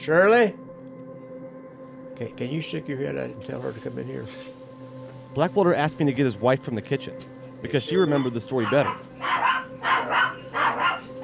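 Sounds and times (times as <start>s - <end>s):
speech: 0.0s - 0.6s, 2.2s - 4.6s, 5.3s - 9.1s
dog barking: 8.1s - 11.2s.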